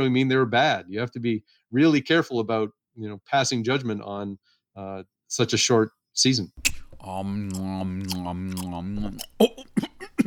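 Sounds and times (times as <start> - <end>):
speech: 0.0 - 9.9
chewing a soft chocolate-covered protein bar: 6.6 - 10.2
person humming mmm in enjoyment: 6.6 - 10.2.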